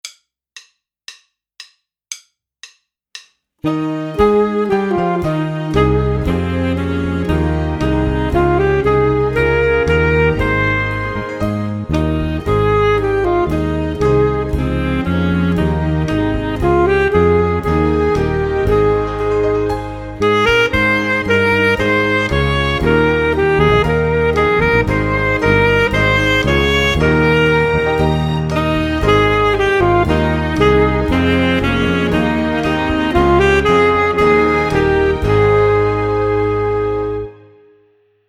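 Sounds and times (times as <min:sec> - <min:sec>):
full saxophone section playing a hymn tune: 0:03.7 - 0:37.5.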